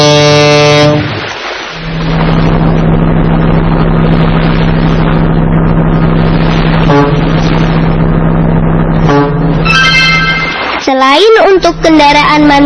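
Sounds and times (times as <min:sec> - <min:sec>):
loud ship horn blasts: 0:00.0 - 0:10.9
ship engine droning at a harbour: 0:00.0 - 0:12.6
brief tonal bursts: 0:09.2 - 0:11.0
speech: 0:11.9 - 0:12.6.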